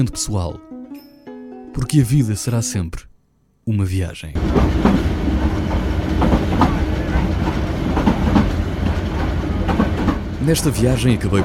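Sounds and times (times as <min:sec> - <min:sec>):
speech: 0:00.0 - 0:00.8, 0:01.8 - 0:03.1, 0:03.7 - 0:05.1, 0:10.4 - 0:11.4
passenger train rumbling along the tracks: 0:04.4 - 0:11.4
train wheels clacking over rail joints: 0:04.4 - 0:11.4.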